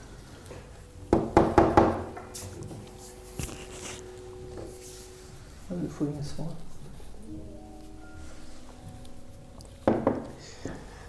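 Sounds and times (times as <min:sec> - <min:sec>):
knuckles knocking on the locked door of a house: 0:01.1 - 0:02.2
speech: 0:06.0 - 0:06.7.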